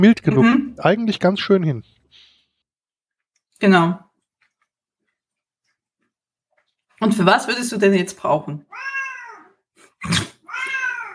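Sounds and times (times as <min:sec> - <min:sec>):
speech: 0:00.0 - 0:02.2, 0:03.6 - 0:04.1, 0:07.0 - 0:09.0, 0:10.0 - 0:10.8
cat meowing: 0:08.7 - 0:09.6, 0:10.4 - 0:11.1.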